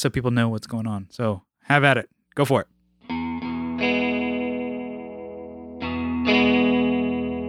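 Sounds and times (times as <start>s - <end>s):
speech: 0.0s - 2.7s
sustained electric guitar chords through chorus pedal: 3.0s - 7.4s.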